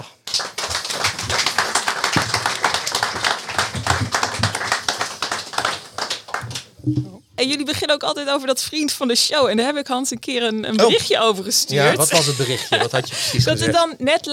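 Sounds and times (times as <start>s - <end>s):
live theatre audience applause: 0.0s - 6.7s
speech: 6.9s - 14.3s
laughter: 11.8s - 14.0s.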